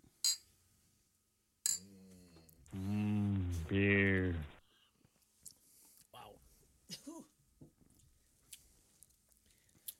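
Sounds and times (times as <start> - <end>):
glasses clinking in a toast: 0.2 - 0.5, 1.7 - 1.9
speech: 3.7 - 4.5.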